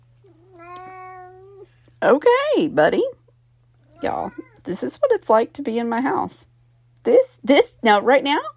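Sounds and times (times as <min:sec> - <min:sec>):
faint constant hum: 0:00.0 - 0:08.5
cat meowing: 0:00.2 - 0:01.7, 0:03.8 - 0:04.6
speech: 0:02.0 - 0:03.2, 0:04.0 - 0:08.5.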